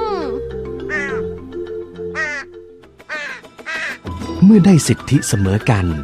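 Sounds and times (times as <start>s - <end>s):
crow cawing in harsh rasping calls: 0.8s - 1.4s, 2.2s - 4.1s
speech: 4.4s - 6.0s.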